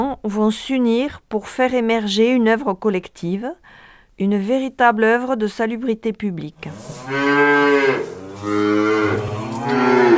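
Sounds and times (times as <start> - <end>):
speech: 0.2 - 10.1
cows mooing: 6.7 - 10.1.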